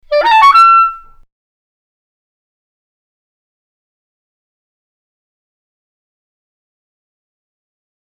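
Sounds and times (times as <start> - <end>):
clarinet playing the same pitch in different timbres: 0.0 - 1.2.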